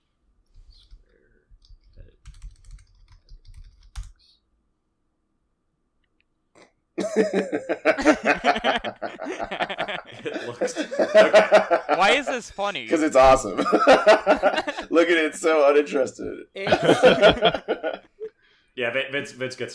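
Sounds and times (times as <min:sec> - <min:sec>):
typing on a computer keyboard: 0:00.5 - 0:04.2
people laughing: 0:07.0 - 0:15.4, 0:16.6 - 0:18.3
speech: 0:07.1 - 0:18.1, 0:18.8 - 0:19.7.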